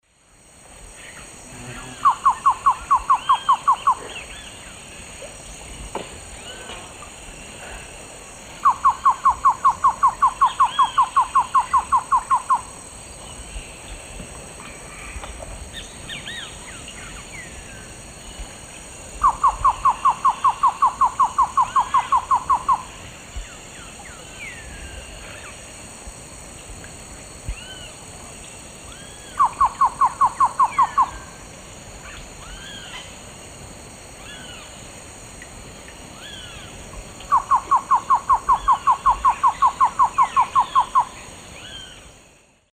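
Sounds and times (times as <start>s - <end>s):
male Thamnophilus praecox song in South American eastern lowlands: 1.0s - 5.0s, 8.6s - 18.5s, 19.2s - 25.6s, 27.5s - 31.2s, 34.2s - 34.8s, 36.2s - 42.1s.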